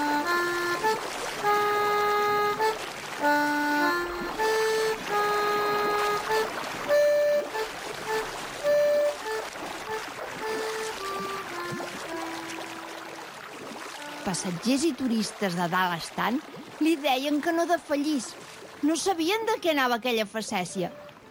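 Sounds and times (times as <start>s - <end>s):
ship horn tones as the ship pulls away from port: 0.0s - 15.1s
ship engine noise: 0.0s - 21.2s
water washing as the ship leaves port: 0.0s - 21.2s
speech: 14.4s - 21.2s.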